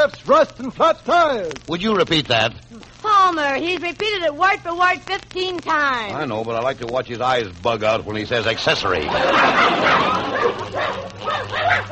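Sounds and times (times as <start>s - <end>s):
speech: 0.0s - 11.9s
laughter: 8.5s - 11.9s
dog barking and yipping: 9.2s - 11.9s.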